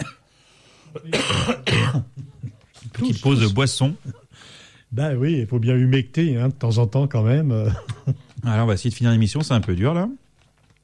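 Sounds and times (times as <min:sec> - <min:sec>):
man coughing harshly: 0:00.0 - 0:00.3, 0:00.9 - 0:03.2
speech: 0:03.0 - 0:04.2, 0:04.9 - 0:10.2.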